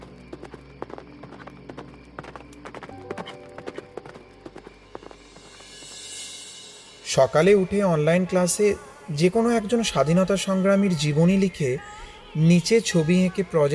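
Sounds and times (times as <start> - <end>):
horse hooves clip-clopping: 0.0 - 6.2
speech: 7.1 - 13.7.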